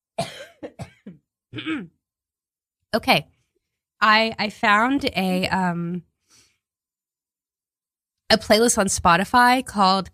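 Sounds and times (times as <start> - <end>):
person coughing: 0.2 - 2.0
speech: 1.6 - 2.0, 2.9 - 3.3, 4.0 - 6.1, 8.3 - 10.1.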